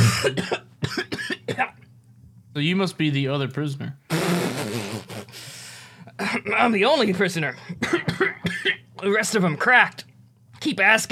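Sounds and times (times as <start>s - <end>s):
man coughing: 0.0s - 1.8s, 6.2s - 6.5s, 7.6s - 8.8s
speech: 0.2s - 0.6s, 2.6s - 4.0s, 6.4s - 8.2s, 9.0s - 10.0s, 10.6s - 11.0s.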